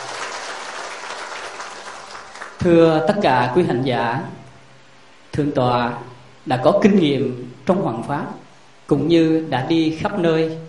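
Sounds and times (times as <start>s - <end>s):
audience applauding to welcome a senior Buddhist monk at a Buddhist gathering: 0.0s - 2.6s
speech: 2.6s - 4.4s, 5.4s - 10.6s.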